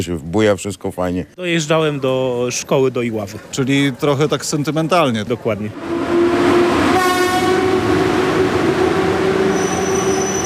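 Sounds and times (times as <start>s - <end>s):
speech: 0.0s - 6.2s
passenger train running on rails: 5.7s - 10.4s
high metallic whine: 7.6s - 10.4s.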